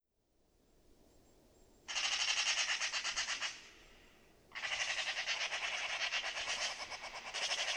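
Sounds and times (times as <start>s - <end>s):
Eurasian magpie Pica pica rattling chatter: 1.9s - 3.5s, 4.5s - 7.7s.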